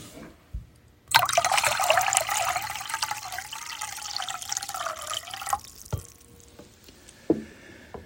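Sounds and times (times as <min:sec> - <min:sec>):
water poured into a basin to wash feet: 0:01.1 - 0:06.3.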